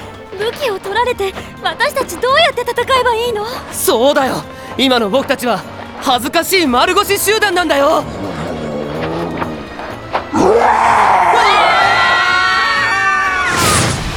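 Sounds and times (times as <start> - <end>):
speech: 0.5 - 8.4
group of people screaming with high-pitched cries: 10.3 - 14.0.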